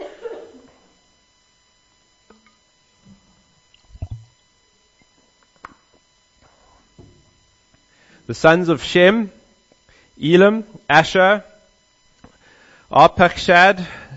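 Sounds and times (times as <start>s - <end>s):
laughter: 0.0s - 0.8s
person drinking water: 3.8s - 4.3s
wet mouth clicks: 3.8s - 4.3s
speech: 8.3s - 9.4s, 10.2s - 11.5s, 13.0s - 14.0s.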